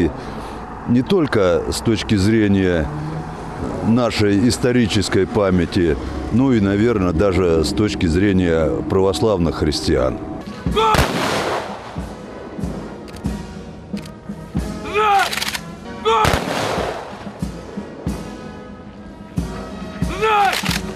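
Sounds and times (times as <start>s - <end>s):
speech: 0.1s - 3.1s, 3.8s - 11.2s
ceremonial rifle salute volleys at a memorial: 10.5s - 12.1s, 15.2s - 17.3s, 20.4s - 20.9s
shouted command: 10.6s - 11.1s, 14.8s - 15.4s, 16.0s - 16.4s, 20.0s - 20.7s.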